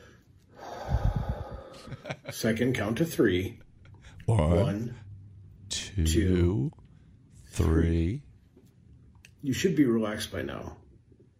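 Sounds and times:
deep breath in and out as a calming exercise: 0.0 - 2.0
speech: 1.8 - 3.6, 4.3 - 5.0, 6.0 - 6.8, 7.6 - 8.3, 9.4 - 10.8.

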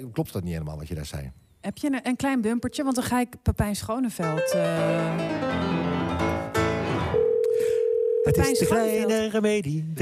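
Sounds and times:
speech: 0.0 - 6.4, 8.2 - 9.9
short burst of bright music: 4.2 - 7.2
steady telephone dial tone while placing a call: 7.2 - 8.8.

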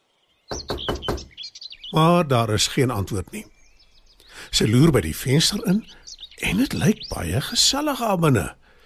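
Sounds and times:
birds chirping and tweeting softly in a forest: 0.0 - 8.8
girl knocking on the wooden door of a small cottage in a forest: 0.5 - 1.4
speech: 1.9 - 3.6, 4.5 - 8.6.

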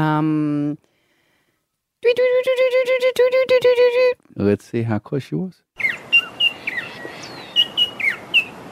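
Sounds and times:
speech: 0.0 - 0.9, 2.0 - 5.6
faint hiss: 0.0 - 2.4, 3.1 - 8.6
person imitating fluffy-backed tit-babbler call: 2.0 - 4.2
fluffy-backed tit-babbler calling: 5.8 - 8.6.

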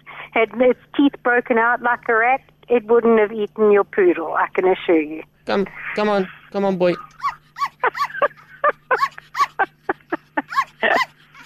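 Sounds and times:
faint steady hum: 0.0 - 11.4
speech: 0.4 - 8.1
laughter: 5.5 - 11.4
dog whimpering: 6.8 - 11.4.

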